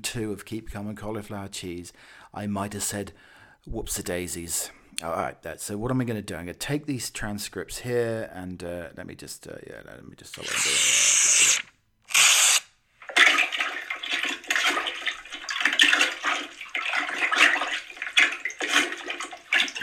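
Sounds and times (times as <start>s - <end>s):
speech: 0.0s - 11.1s
toilet flushing: 13.0s - 19.8s.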